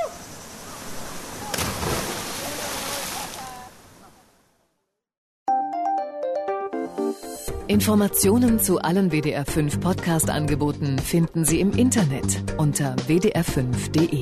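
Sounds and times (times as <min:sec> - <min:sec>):
continuous rushing wash of water: 0:00.0 - 0:04.5
splash of a person jumping three metres from a rock into cold water in Colombia: 0:01.1 - 0:03.6
music: 0:05.5 - 0:14.1
speech: 0:07.7 - 0:14.1.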